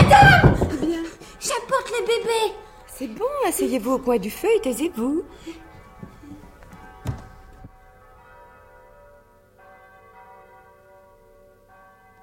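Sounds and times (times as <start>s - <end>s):
dull knocks: 0.0s - 1.2s, 5.8s - 7.7s
church bells ringing softly: 0.0s - 12.2s
speech: 1.6s - 5.7s.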